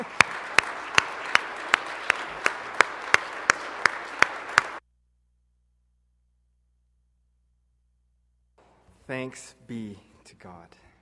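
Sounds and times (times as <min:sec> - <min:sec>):
steady rhythmic clapping: 0:00.0 - 0:04.8
speech: 0:09.1 - 0:10.9.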